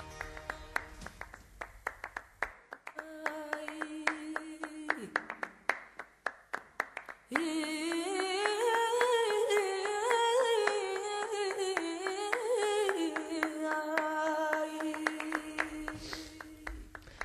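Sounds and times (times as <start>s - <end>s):
music: 0.0s - 1.3s
rhythmic hand clapping: 0.0s - 17.2s.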